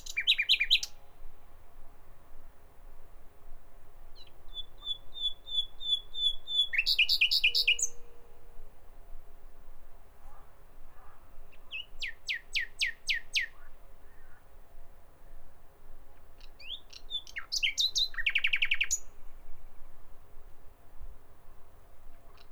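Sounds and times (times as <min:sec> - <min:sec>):
common nightingale song: 0:00.0 - 0:01.0, 0:04.2 - 0:08.2, 0:11.7 - 0:13.7, 0:16.4 - 0:19.2.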